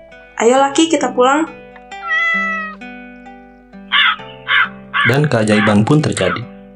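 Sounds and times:
sustained musical tones: 0.0s - 6.7s
speech: 0.4s - 1.6s, 5.0s - 6.5s
crow cawing: 1.5s - 6.7s.

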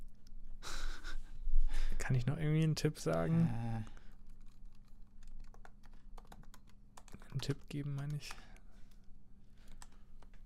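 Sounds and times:
speech: 2.1s - 4.0s, 7.4s - 8.5s
rapid typing on a computer keyboard: 4.2s - 9.1s, 9.7s - 10.4s.

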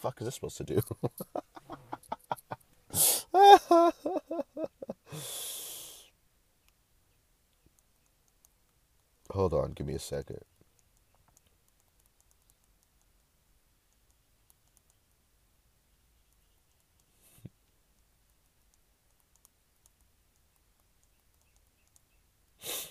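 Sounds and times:
speech: 0.0s - 1.5s, 3.0s - 4.2s, 9.8s - 10.5s
laughter: 0.7s - 2.6s, 3.3s - 5.1s
soft typing on a computer keyboard: 10.8s - 13.1s, 18.0s - 22.1s.

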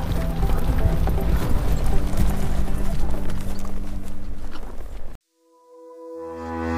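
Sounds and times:
horse and mule hooves clip-clopping in a walking rhythm: 0.0s - 5.2s.

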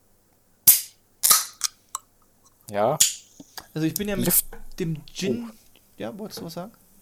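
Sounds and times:
drink can cracking open with fizzing hiss: 0.7s - 1.8s
speech: 2.7s - 6.8s.

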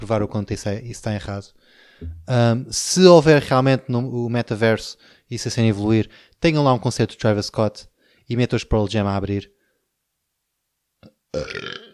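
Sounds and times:
speech: 0.0s - 9.6s, 11.3s - 11.9s
loud drawn-out low-pitched burp: 2.0s - 2.3s, 11.0s - 11.9s.

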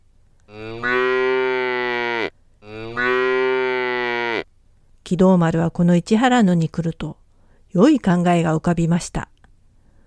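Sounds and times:
cow mooing: 0.5s - 4.5s
speech: 5.1s - 9.3s.

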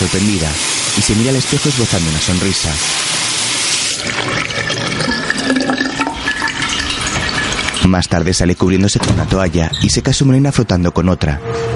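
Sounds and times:
water running from a sink tap: 0.0s - 8.4s
speech: 0.1s - 3.4s, 4.0s - 5.8s, 7.8s - 11.7s.

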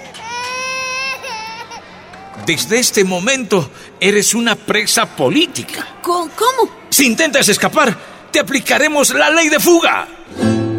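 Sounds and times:
two-year-old girl crying from hunger: 0.0s - 2.6s
speech: 2.4s - 10.6s.

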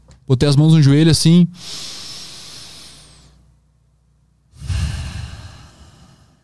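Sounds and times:
speech: 0.3s - 2.0s
person breathing slowly and deeply: 1.6s - 3.4s, 4.5s - 6.4s.

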